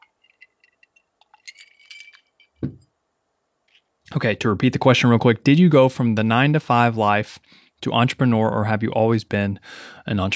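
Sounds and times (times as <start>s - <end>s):
ice cubes clinking against a drinking glass: 0.0s - 2.6s
speech: 4.1s - 10.3s.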